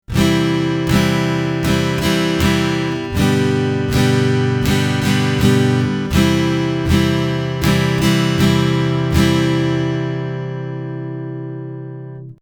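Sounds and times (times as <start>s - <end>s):
easy strumming on acoustic guitar: 0.0s - 12.4s.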